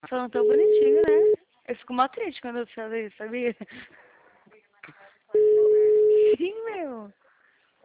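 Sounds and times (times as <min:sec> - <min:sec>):
speech: 0:00.0 - 0:04.0, 0:06.4 - 0:07.2
telephone busy tone after a dropped call: 0:00.4 - 0:01.4, 0:05.4 - 0:06.2.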